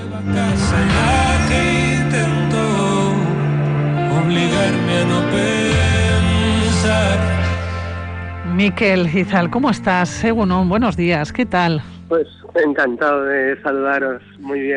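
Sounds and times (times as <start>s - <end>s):
full band song with sustained low bass line and layered melodic harmonies: 0.0s - 7.8s
speech: 0.2s - 2.4s, 8.6s - 14.7s.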